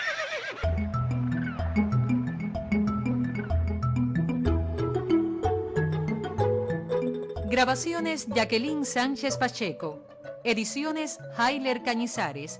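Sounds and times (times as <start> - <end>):
horse rearing up on its hind legs whinnying: 0.0 - 0.8
music with a steady pulsing bass line and light percussion: 0.7 - 7.8
speech: 7.6 - 12.5.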